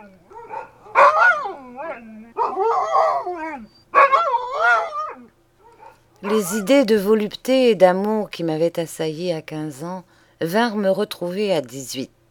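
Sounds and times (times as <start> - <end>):
dogs barking with yelping whining barks: 0.0 - 6.9
speech: 6.2 - 12.2.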